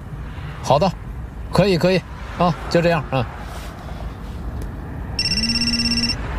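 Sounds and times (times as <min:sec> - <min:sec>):
speech: 0:00.7 - 0:03.4
telephone ringing in a short electronic burst: 0:05.2 - 0:06.2.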